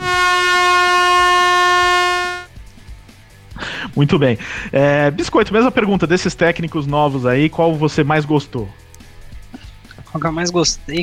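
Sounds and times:
air horn blast: 0:00.0 - 0:02.5
speech: 0:04.0 - 0:08.8, 0:10.1 - 0:11.0.

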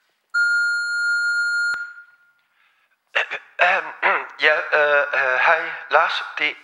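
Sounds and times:
answering machine beep tone: 0:00.4 - 0:02.2
speech: 0:03.6 - 0:06.6.

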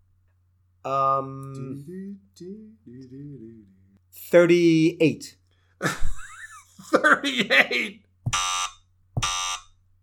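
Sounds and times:
speech: 0:00.8 - 0:06.1, 0:06.8 - 0:08.4
laughter: 0:05.8 - 0:08.0
electronic wrong-answer buzzer for a trivia question: 0:08.3 - 0:09.8.

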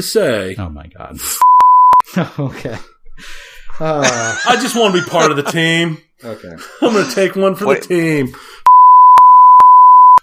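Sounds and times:
speech: 0:00.0 - 0:08.6
censor bleep tone: 0:01.4 - 0:02.0, 0:08.7 - 0:10.2
laughter: 0:03.8 - 0:07.4.

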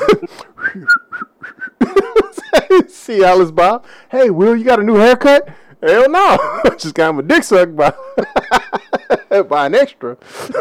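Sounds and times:
laughter: 0:00.0 - 0:00.4, 0:01.8 - 0:02.9, 0:06.1 - 0:07.1, 0:07.8 - 0:09.6, 0:10.3 - 0:10.5
speech: 0:00.1 - 0:01.1, 0:03.1 - 0:08.7, 0:09.3 - 0:10.5
man whistling a short bouncy tune coming into the house: 0:00.6 - 0:01.8.

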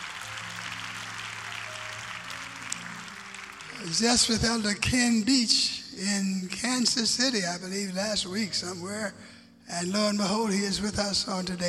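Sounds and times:
audience applause: 0:00.0 - 0:04.7
speech: 0:03.8 - 0:11.6.

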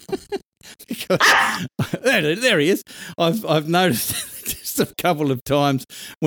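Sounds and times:
speech: 0:00.1 - 0:00.4, 0:01.1 - 0:06.2
dog barking: 0:01.2 - 0:01.6.

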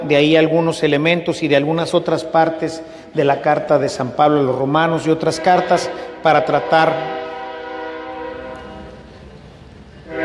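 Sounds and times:
speech: 0:00.1 - 0:07.2
passing train horn chord: 0:05.2 - 0:09.1, 0:10.0 - 0:10.2
low rumble of a passing train: 0:06.9 - 0:10.2.

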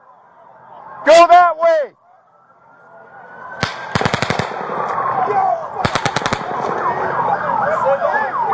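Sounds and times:
emergency sirens wailing: 0:00.0 - 0:08.5
faint shouting voices: 0:00.0 - 0:08.5
single gunshot: 0:03.6 - 0:04.7, 0:05.8 - 0:06.7
automatic gunfire: 0:03.6 - 0:04.8, 0:05.8 - 0:06.8.

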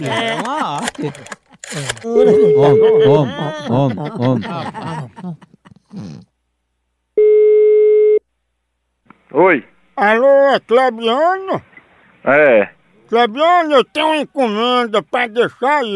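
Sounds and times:
speech: 0:00.0 - 0:06.2, 0:09.3 - 0:15.9
people talking and chuckling: 0:00.0 - 0:06.3
steady telephone tone while a call is being dialed: 0:02.1 - 0:03.2, 0:07.2 - 0:08.2.

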